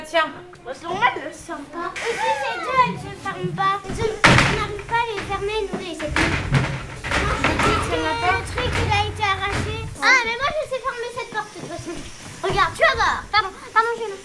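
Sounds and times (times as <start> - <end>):
children chattering excitedly: 0.0 - 14.2
speech: 0.1 - 4.1
toilet door pushed shut by a child: 3.9 - 10.0.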